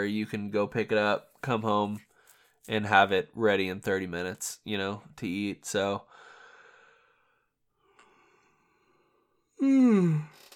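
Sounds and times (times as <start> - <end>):
speech: 0.0 - 6.1, 9.6 - 10.4
person yawning: 9.6 - 10.5.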